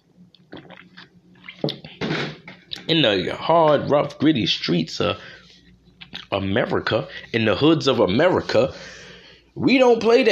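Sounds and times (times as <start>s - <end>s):
person drinking water: 0.2s - 2.0s
speech: 2.9s - 5.4s, 6.3s - 9.0s, 9.6s - 10.3s.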